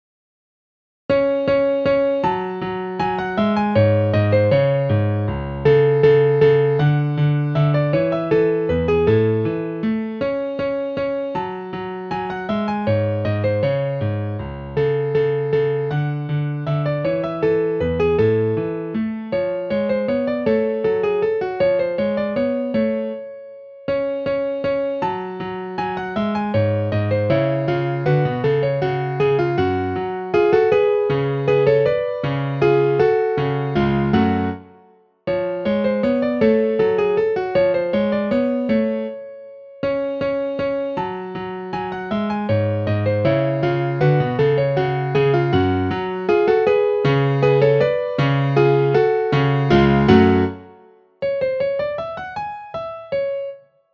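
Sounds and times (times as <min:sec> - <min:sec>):
piano minuet with trio sketch: 0:01.1 - 0:53.9.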